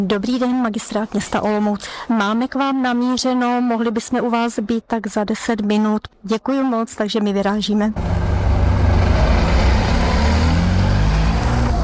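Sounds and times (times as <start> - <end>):
speech: 0.0 - 8.2
car pulling up to a loading ramp: 8.0 - 11.8.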